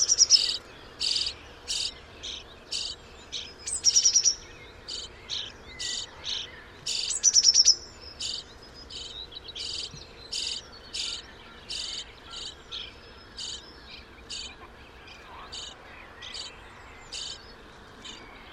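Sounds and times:
common starling calls: 0:00.0 - 0:18.5.

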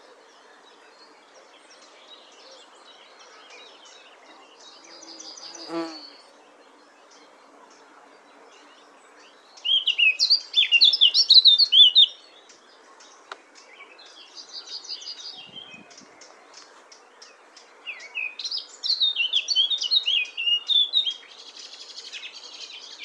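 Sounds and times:
Eurasian blackcap rich rapid warbling song: 0:09.5 - 0:23.0.

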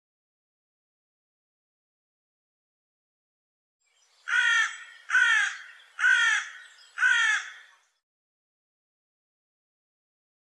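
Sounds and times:
hoarse cawing bird calls: 0:04.2 - 0:08.0.

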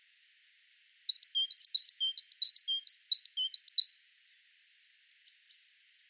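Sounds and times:
great tit singing bright ringing notes: 0:01.1 - 0:03.9.

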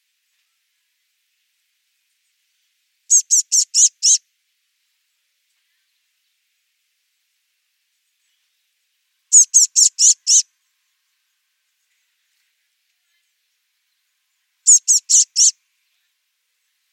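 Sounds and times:
Eurasian blue tit call series of high thin notes: 0:03.1 - 0:04.2, 0:09.3 - 0:10.4, 0:14.7 - 0:15.6.

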